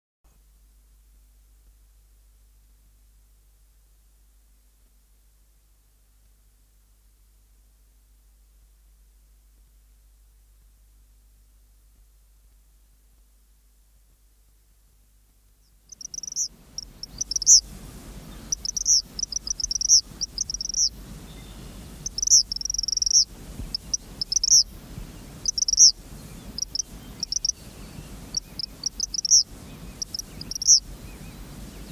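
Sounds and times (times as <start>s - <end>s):
songbirds singing: 15.6s - 31.9s
eastern kingbird calling: 15.9s - 17.6s, 18.4s - 20.9s, 22.0s - 24.7s, 25.4s - 25.9s, 26.6s - 27.6s, 28.3s - 30.8s.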